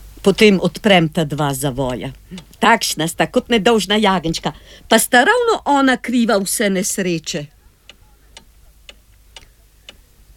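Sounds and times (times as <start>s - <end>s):
faint low hum: 0.0s - 10.3s
speech: 0.2s - 7.6s
clock ticking: 0.3s - 4.5s, 6.4s - 10.3s.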